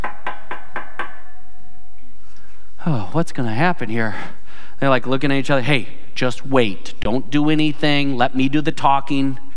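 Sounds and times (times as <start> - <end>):
sharp knocks on a wooden house door: 0.0 - 1.2
speech: 2.8 - 9.4.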